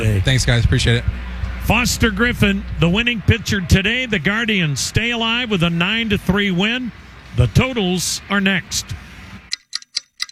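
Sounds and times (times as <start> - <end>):
speech: 0.0 - 9.0
laughter: 0.0 - 9.5
clock ticking: 0.0 - 10.3.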